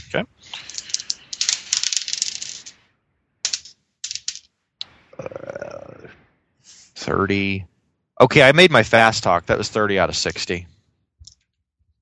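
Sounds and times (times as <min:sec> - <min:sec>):
speech: 0:00.1 - 0:00.8, 0:07.1 - 0:10.8
dice clattering and rolling across a hard surface: 0:00.5 - 0:02.8, 0:03.5 - 0:04.5.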